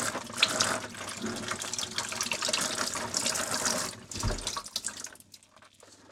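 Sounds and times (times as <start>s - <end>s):
running tap water rinsing a knife: 0.0s - 5.8s.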